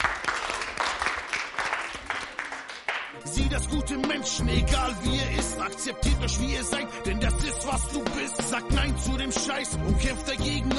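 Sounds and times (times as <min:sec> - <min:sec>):
crowd applause: 0:00.0 - 0:03.2
speech: 0:03.2 - 0:10.7.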